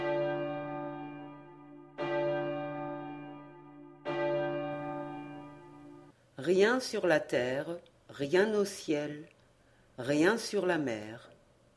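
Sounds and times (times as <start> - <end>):
church bell tolling: 0.0 - 6.1
speech: 6.4 - 9.4, 10.0 - 11.3.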